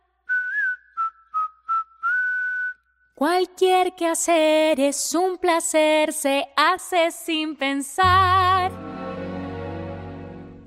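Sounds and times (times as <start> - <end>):
person whistling a tune: 0.2 - 3.1
speech: 3.2 - 8.7.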